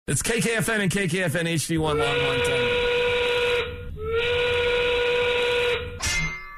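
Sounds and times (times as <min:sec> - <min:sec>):
speech: 0:00.1 - 0:03.2
five o'clock factory steam whistle blowing: 0:01.8 - 0:06.0.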